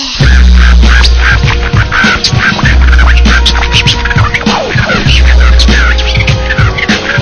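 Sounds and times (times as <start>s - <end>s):
loud bird call like a duck quacking: 0.2s - 7.2s.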